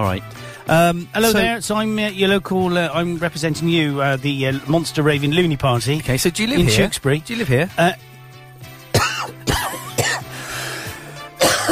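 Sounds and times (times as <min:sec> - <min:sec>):
speech: 0:00.0 - 0:08.1
person coughing in a loud fit: 0:09.0 - 0:10.4, 0:11.4 - 0:11.7.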